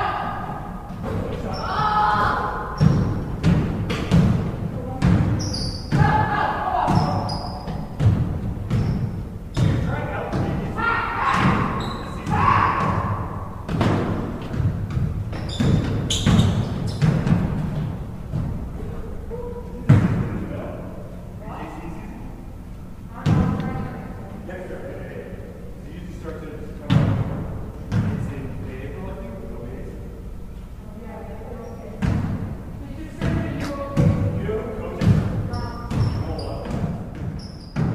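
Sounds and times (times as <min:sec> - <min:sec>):
sneaker squeaks on a basketball court: 0:00.9 - 0:04.2, 0:04.9 - 0:19.0, 0:31.5 - 0:32.3, 0:35.0 - 0:37.9
basketball bouncing on a hard court: 0:02.2 - 0:10.6, 0:11.2 - 0:18.7, 0:19.9 - 0:20.3, 0:23.2 - 0:23.8, 0:26.9 - 0:28.3, 0:32.0 - 0:32.5, 0:33.2 - 0:34.4, 0:35.0 - 0:37.9.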